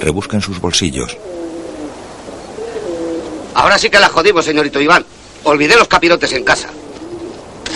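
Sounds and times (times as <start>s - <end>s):
speech: 0.0s - 1.3s, 3.6s - 6.8s
pigeons cooing in low soft overlapping murmurs: 1.1s - 4.2s, 6.1s - 7.7s.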